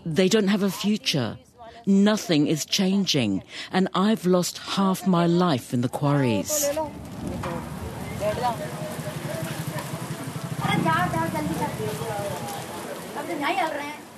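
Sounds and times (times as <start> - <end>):
speech: 0.0 - 8.9, 13.2 - 14.0
steady rain falling on asphalt street: 6.6 - 14.1.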